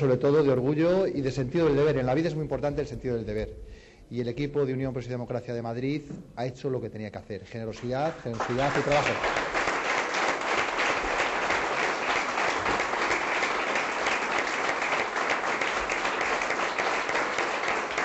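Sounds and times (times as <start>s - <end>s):
speech: 0.0s - 9.5s
large audience applauding at a political party event in Madrid: 7.8s - 18.0s.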